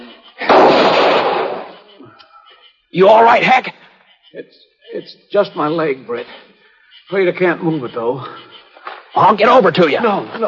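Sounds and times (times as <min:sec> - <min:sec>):
gunshot near a trading post: 0:00.4 - 0:01.8
speech: 0:02.9 - 0:06.5, 0:07.1 - 0:08.5, 0:09.2 - 0:10.4.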